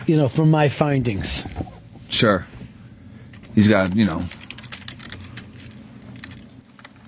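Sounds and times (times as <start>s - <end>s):
steady low hum: 0.0s - 7.0s
speech: 0.1s - 2.5s, 3.6s - 4.4s
typing on a computer keyboard: 3.4s - 7.0s.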